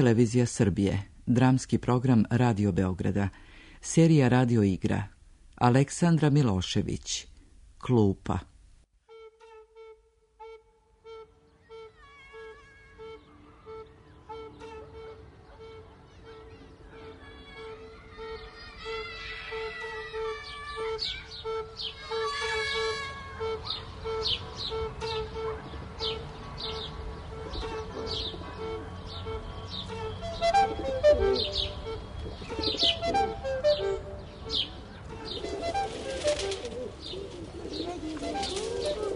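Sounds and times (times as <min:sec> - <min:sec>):
speech: 0:00.0 - 0:08.5
sparrows chirping while being fed: 0:11.5 - 0:39.1
pigeons cooing while being fed: 0:23.4 - 0:39.1.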